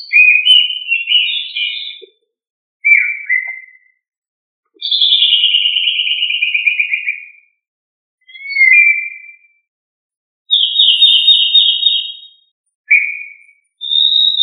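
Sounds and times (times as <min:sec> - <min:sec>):
thrush fluty whistling song: 0:00.0 - 0:02.2, 0:02.8 - 0:04.0, 0:04.8 - 0:07.6, 0:08.2 - 0:09.6, 0:10.5 - 0:14.4.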